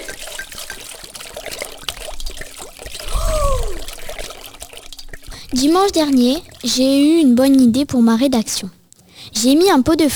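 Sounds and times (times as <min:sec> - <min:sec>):
water pouring from a broken washing machine onto a kitchen floor: 0:00.0 - 0:06.7
speech: 0:05.5 - 0:08.8, 0:09.4 - 0:10.1.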